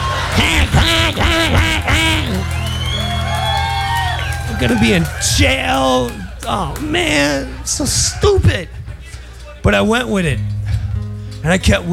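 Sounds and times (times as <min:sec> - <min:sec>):
laughter: 0:00.0 - 0:09.4
low murmur: 0:00.0 - 0:11.9
duck quacking: 0:00.4 - 0:02.4
speech: 0:04.6 - 0:08.8, 0:09.6 - 0:10.5, 0:11.4 - 0:11.9.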